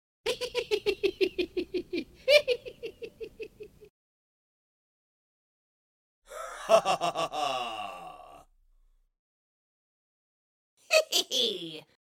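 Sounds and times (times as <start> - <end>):
villain laughing: 0.3 - 3.9, 6.3 - 8.4, 10.9 - 11.7.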